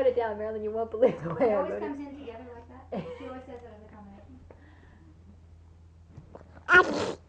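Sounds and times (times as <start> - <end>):
speech: 0.0 - 2.2, 2.9 - 4.1, 6.4 - 7.2
baby imitating a dog's woof: 6.6 - 7.2.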